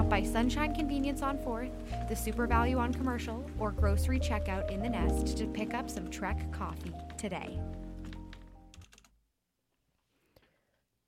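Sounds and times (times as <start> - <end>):
speech: 0.1 - 7.8
fingernails typing on a computer keyboard: 8.0 - 9.2.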